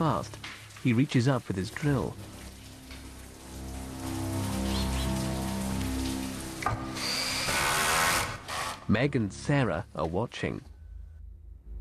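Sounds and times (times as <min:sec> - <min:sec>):
speech: 0:00.0 - 0:02.3, 0:08.9 - 0:10.7
heavy rain pounding on a terrace outside French windows: 0:00.0 - 0:08.8
low tonal drone: 0:02.6 - 0:07.4.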